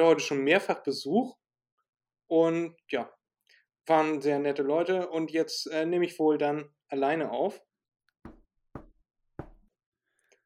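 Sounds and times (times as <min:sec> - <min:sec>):
speech: 0:00.0 - 0:01.4, 0:02.3 - 0:03.2, 0:03.8 - 0:08.4
knocking on a wooden door: 0:08.2 - 0:09.7.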